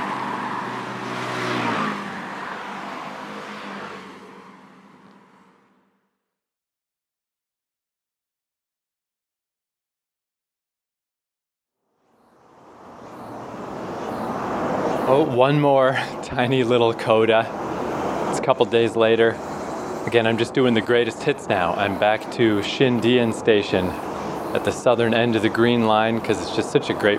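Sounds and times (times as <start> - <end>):
road traffic rumbling: 0.0 - 6.2, 12.0 - 27.1
speech: 15.1 - 17.6, 18.4 - 27.1.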